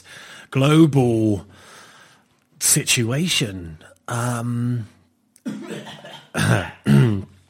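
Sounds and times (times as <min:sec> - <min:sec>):
speech: 0:00.5 - 0:01.7, 0:02.7 - 0:05.6, 0:06.3 - 0:07.0
person clearing throat: 0:05.4 - 0:07.4.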